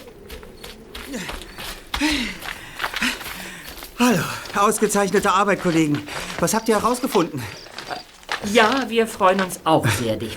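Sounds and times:
faint shuffling: 0:00.0 - 0:10.3
man panting heavily while jogging: 0:01.0 - 0:04.7
speech: 0:01.1 - 0:02.4, 0:04.0 - 0:07.6, 0:08.4 - 0:10.3.

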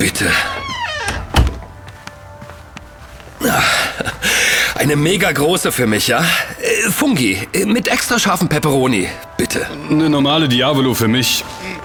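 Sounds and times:
speech: 0:00.0 - 0:00.6, 0:03.4 - 0:03.7, 0:04.8 - 0:11.7
door creaking sweep: 0:00.0 - 0:01.8
door swinging shut with a solid thump: 0:00.4 - 0:01.7.

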